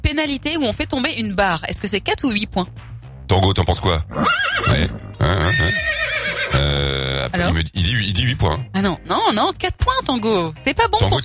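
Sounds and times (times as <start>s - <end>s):
speech: 0.2s - 11.2s
horse whinnying: 4.1s - 7.4s.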